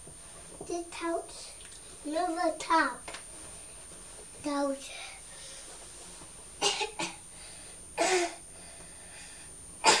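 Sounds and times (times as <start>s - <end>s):
speech: 0.7s - 3.2s, 4.4s - 5.0s
young child giving exaggerated forced coughs: 6.6s - 7.2s, 8.0s - 8.4s.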